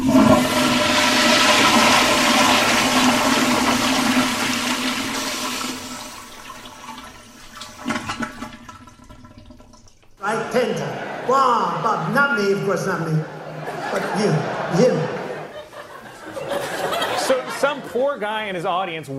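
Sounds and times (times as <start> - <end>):
toilet flushing: 0.0 - 11.2
toilet water trickling and refilling: 3.7 - 10.2
laughter: 10.2 - 18.2
speech: 11.4 - 13.4, 14.2 - 15.1, 18.0 - 19.1.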